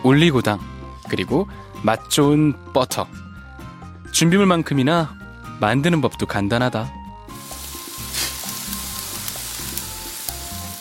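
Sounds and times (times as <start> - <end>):
speech: 0.1 - 3.2, 4.1 - 7.0
rice cakes pan-frying until golden: 7.3 - 10.7.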